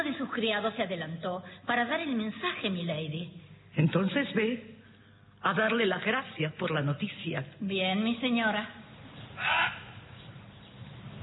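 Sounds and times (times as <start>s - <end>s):
speech: 0.0s - 4.8s, 5.4s - 8.8s, 9.4s - 9.8s
steady low hum: 0.0s - 11.2s
raven croaking: 9.2s - 10.5s.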